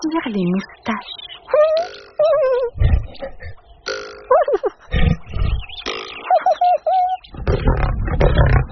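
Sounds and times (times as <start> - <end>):
speech: 0.2 - 3.6
higher squealing warbling cries: 1.4 - 7.8
angry lion growling and roaring: 2.7 - 3.6, 4.9 - 5.7, 7.3 - 8.6.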